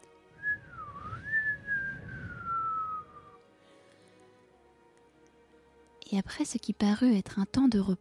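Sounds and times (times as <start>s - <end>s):
human whistle sliding through a melodic phrase: 0.4s - 3.5s
speech: 6.1s - 7.9s.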